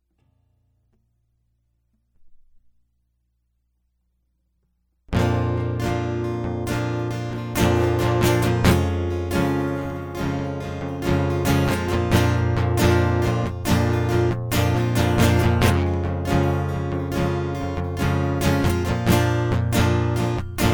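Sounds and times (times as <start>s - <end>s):
guitar loop: 5.1s - 20.7s.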